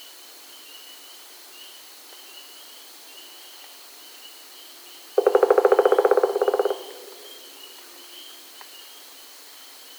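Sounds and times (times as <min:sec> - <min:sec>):
pileated woodpecker calling: 0:05.2 - 0:07.8.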